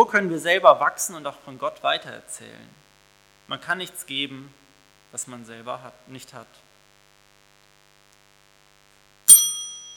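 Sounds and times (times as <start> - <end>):
speech: 0.0 - 2.8, 3.5 - 6.6
school bell ringing: 9.3 - 9.9.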